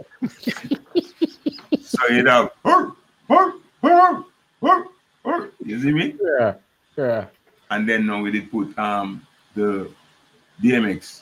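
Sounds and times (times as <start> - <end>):
laughter: 0.0 - 2.4
speech: 2.0 - 4.9, 5.6 - 10.0, 10.6 - 11.1
dog barking: 2.6 - 5.5.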